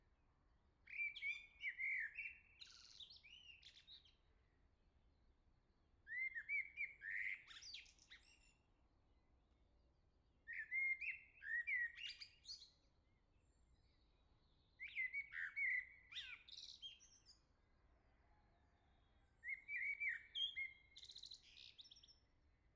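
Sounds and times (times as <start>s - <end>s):
common blackbird song in La Jarrie France: 0.9s - 4.6s, 6.1s - 8.7s, 10.4s - 17.6s, 18.6s - 22.7s.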